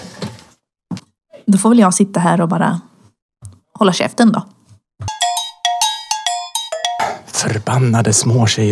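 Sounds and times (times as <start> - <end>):
speech: 1.5 - 2.9, 3.8 - 4.6, 7.7 - 8.7
doorbell ringing: 5.1 - 7.5.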